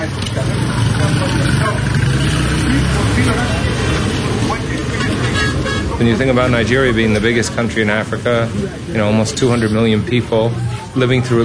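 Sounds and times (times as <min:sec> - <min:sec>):
crowd of voices chattering on a street in Lagos Nigeria: 0:00.0 - 0:11.4
dense street traffic engines rumbling and idling in Lagos Nigeria: 0:00.0 - 0:11.4
speech: 0:03.2 - 0:03.6, 0:06.0 - 0:11.4.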